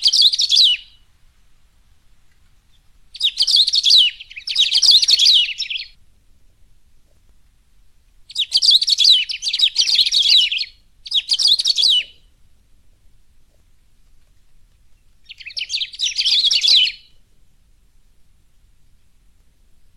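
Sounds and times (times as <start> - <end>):
saffron-billed sparrow song: 0.0 - 1.1, 2.2 - 6.0, 8.3 - 12.4, 14.5 - 17.2.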